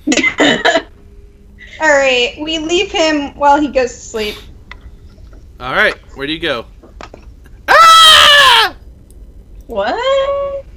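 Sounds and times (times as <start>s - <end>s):
speech: 2.1s - 4.5s, 5.6s - 6.7s, 9.7s - 10.3s
person imitating a scream with wavering wails: 7.7s - 8.7s.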